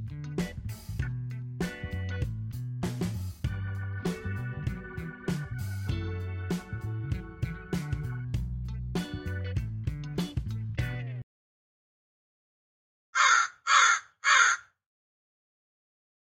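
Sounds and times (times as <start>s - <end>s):
music: 0.0s - 11.3s
crow cawing: 13.2s - 14.8s.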